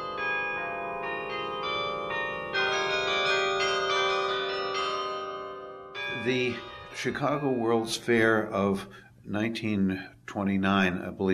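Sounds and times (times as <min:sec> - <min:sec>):
carillon of bells played from a mechanical keyboard: 0:00.0 - 0:08.8
speech: 0:06.2 - 0:11.3.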